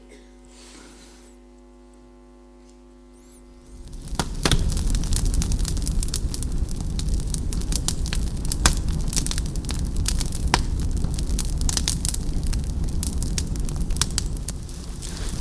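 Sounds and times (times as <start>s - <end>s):
fire being lit, roaring with sharp crackles and pops: 3.5s - 15.3s.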